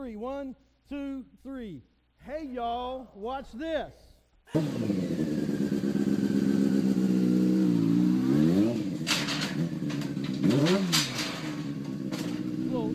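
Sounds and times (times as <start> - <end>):
speech: 0.0 - 5.1
truck engine revving: 4.5 - 12.9.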